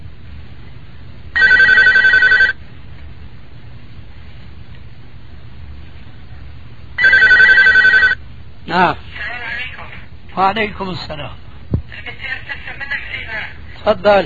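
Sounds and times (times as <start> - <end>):
low hum: 0.0 - 14.2
telephone ringing with an electronic trill: 1.4 - 2.6, 7.0 - 8.2
speech: 8.7 - 9.3, 10.4 - 11.4, 13.8 - 14.2.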